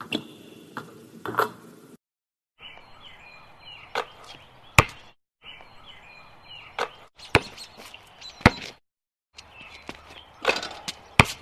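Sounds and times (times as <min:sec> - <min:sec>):
basketball bouncing: 0:04.8 - 0:05.1, 0:06.8 - 0:07.7, 0:08.4 - 0:08.8, 0:09.9 - 0:11.4.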